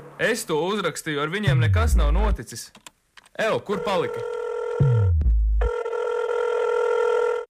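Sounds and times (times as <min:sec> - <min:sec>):
speech: 0:00.2 - 0:05.0
telephone ringing unanswered with bright electronic tone: 0:03.7 - 0:05.1, 0:05.6 - 0:07.4.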